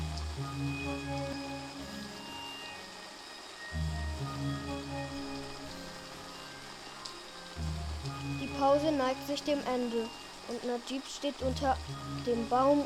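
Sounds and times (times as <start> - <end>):
steady rain falling: 0.0 - 12.8
speech: 8.6 - 12.8.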